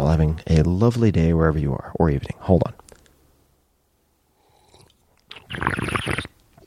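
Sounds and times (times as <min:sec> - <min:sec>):
speech: 0:00.2 - 0:02.8
slurping sip of wine from a glass: 0:04.6 - 0:06.6.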